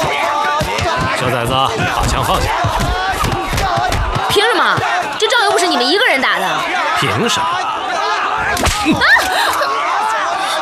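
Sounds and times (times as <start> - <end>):
busy background of voices: 0.0 - 5.9
laughter: 0.0 - 10.6
speech: 1.2 - 9.6
sharp loud whip crack: 8.6 - 8.9.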